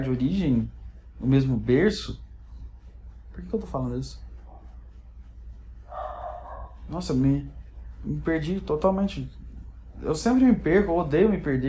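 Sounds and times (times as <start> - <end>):
speech: 0.0 - 2.2, 3.4 - 4.2, 6.9 - 9.4, 10.0 - 11.6
low steady hum: 0.0 - 11.6
dog giving a drawn-out bark: 5.9 - 7.0.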